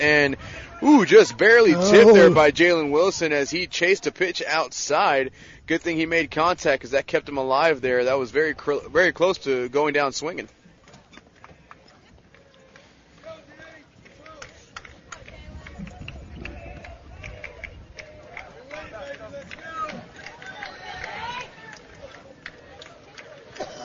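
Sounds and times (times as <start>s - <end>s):
speech: 0.0s - 10.6s
crowd cheering at a baseball game: 0.7s - 2.5s, 11.5s - 23.8s
crowd clapping at a baseball game: 11.1s - 23.8s.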